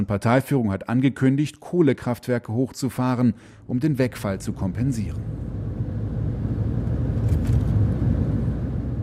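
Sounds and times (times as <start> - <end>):
speech: 0.0 - 5.6
car driving from northern shore of Poyang Lake to the Yangtze River: 4.2 - 9.0.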